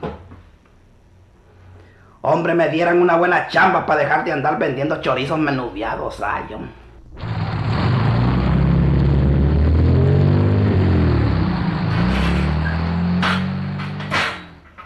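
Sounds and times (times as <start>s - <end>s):
speech: 2.2s - 7.3s
motor vehicle engine rumbling and approaching: 5.0s - 14.7s.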